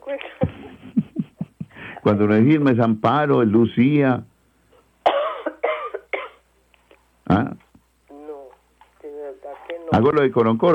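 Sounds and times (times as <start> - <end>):
speech: 0.1 - 0.5, 2.0 - 4.3, 10.0 - 10.7
person coughing harshly: 5.1 - 6.4.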